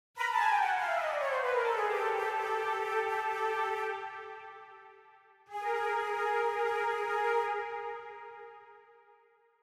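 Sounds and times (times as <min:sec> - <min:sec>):
flute motif: 0:00.2 - 0:09.0.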